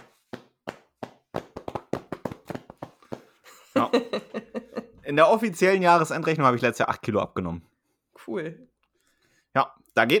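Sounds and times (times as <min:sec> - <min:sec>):
hands patting own shoulders with crossed arms: 0:00.0 - 0:03.6
laughter: 0:03.5 - 0:05.0
speech: 0:03.9 - 0:04.4, 0:05.1 - 0:07.7, 0:08.3 - 0:08.7, 0:09.6 - 0:10.1.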